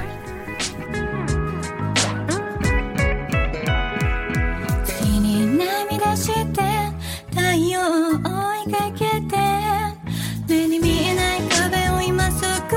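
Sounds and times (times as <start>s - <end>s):
song with layered instruments: 0.0s - 7.7s, 8.4s - 12.7s
singing voice: 4.8s - 12.7s.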